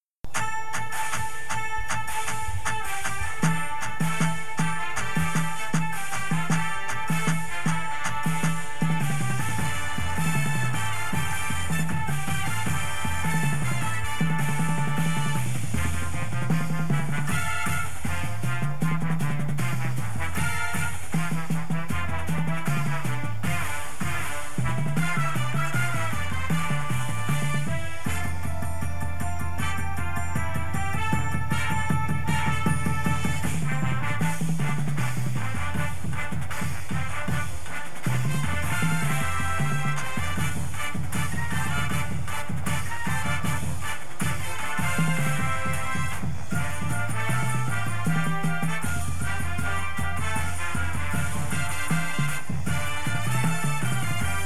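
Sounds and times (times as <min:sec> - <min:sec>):
bass with music: 0:00.0 - 0:54.4
drumline playing: 0:00.3 - 0:54.4.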